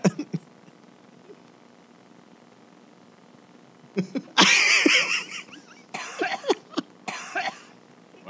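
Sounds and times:
person coughing harshly: 0.0 - 0.5, 4.0 - 5.2, 6.0 - 8.2
laughter: 4.0 - 6.9.

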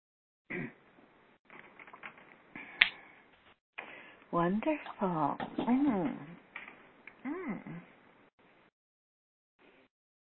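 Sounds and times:
finger snaps from several people: 2.8 - 3.0
speech: 4.3 - 6.3, 7.5 - 7.9.

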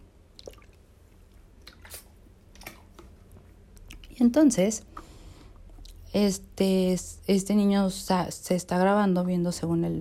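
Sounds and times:
person drinking water: 0.2 - 4.1
speech: 4.2 - 5.0, 6.2 - 10.0.

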